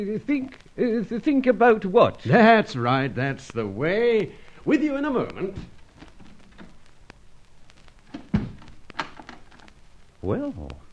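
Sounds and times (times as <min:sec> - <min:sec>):
speech: 0:00.0 - 0:05.8, 0:10.2 - 0:10.8
door thudding shut: 0:08.1 - 0:09.5.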